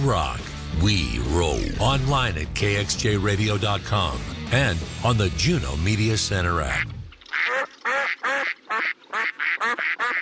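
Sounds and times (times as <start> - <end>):
speech: 0.0 - 7.0
duck quacking: 6.7 - 10.2.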